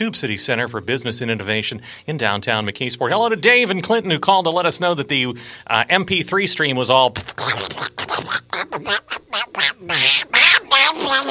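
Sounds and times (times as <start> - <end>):
speech: 0.0 - 8.0, 8.8 - 9.2, 9.8 - 10.4
human voice imitating a cartoon duck quacking: 7.4 - 11.2.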